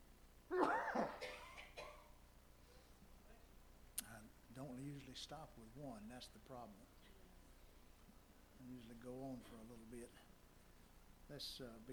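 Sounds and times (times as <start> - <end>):
person sneezing: 0.5 - 1.4
speech: 4.7 - 7.0, 8.6 - 10.3, 11.3 - 11.9.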